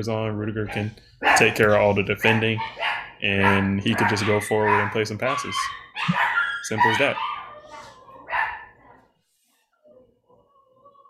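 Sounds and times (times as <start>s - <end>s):
speech: 0.0s - 7.3s
dog barking: 0.7s - 9.1s
dog whining yelps: 2.6s - 8.9s.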